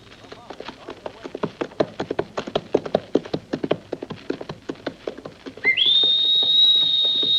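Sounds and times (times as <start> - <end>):
trotting clip-clopping hoofbeats: 0.0 - 7.3
loud sharp rising whistle: 5.6 - 7.3.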